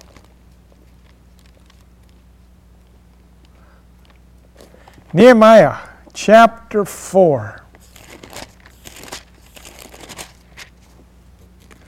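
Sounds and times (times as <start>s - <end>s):
dry paper pages rustling as pages are flipped: 0.0s - 2.2s, 7.8s - 11.8s
speech: 5.1s - 7.6s.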